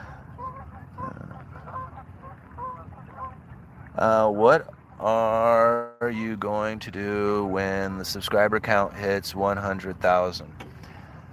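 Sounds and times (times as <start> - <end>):
geese honking as they fly over: 0.0 - 3.6
speech: 4.0 - 10.6.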